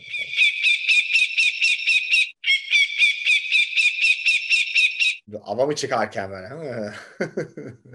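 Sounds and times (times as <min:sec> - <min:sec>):
secretary bird calling in harsh pulsing notes: 0:00.0 - 0:05.3
speech: 0:05.5 - 0:07.9
laughter: 0:06.6 - 0:07.9.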